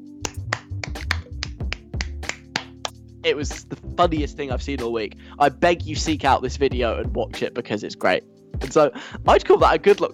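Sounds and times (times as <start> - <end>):
single person clapping alone at a massive house: 0.2 - 3.7
speech: 3.2 - 10.1.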